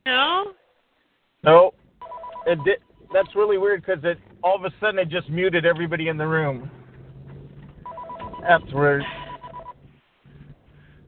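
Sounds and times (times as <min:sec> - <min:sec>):
telephone ringing with electronic trill: 0:02.0 - 0:03.3, 0:07.8 - 0:09.8
speech: 0:02.5 - 0:06.8, 0:08.4 - 0:09.2.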